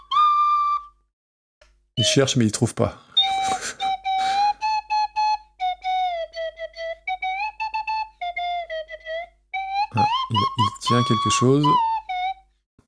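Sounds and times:
small flute playing short halting notes: 0:00.0 - 0:01.1, 0:03.1 - 0:12.6
speech: 0:02.0 - 0:03.1, 0:11.0 - 0:12.0
breathy puffs into a small flute: 0:03.1 - 0:04.7.

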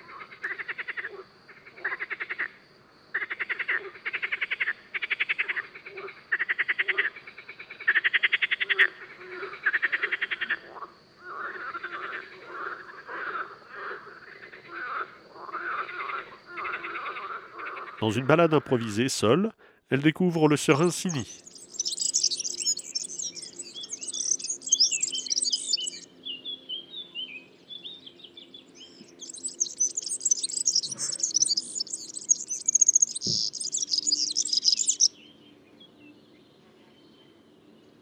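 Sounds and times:
marsh frogs croaking at night at a pond: 0:00.0 - 0:19.5, 0:20.3 - 0:26.1, 0:28.7 - 0:35.2
speech: 0:18.0 - 0:21.5.

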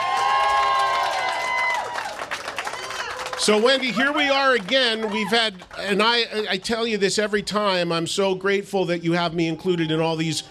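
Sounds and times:
crowd applauding at an album re-release celebration: 0:00.0 - 0:06.6
speech: 0:03.4 - 0:10.4.

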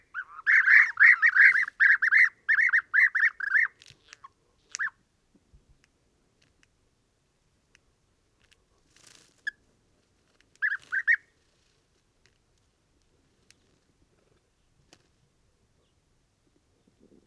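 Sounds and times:
European bee-eaters Merops apiaster calling in an acacia: 0:00.0 - 0:03.8, 0:10.6 - 0:11.2.

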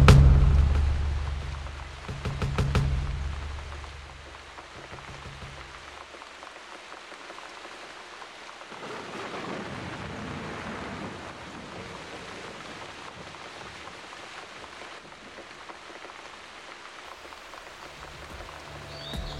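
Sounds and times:
low rumbling: 0:00.0 - 0:05.9
heavy rain pouring: 0:00.0 - 0:19.3.

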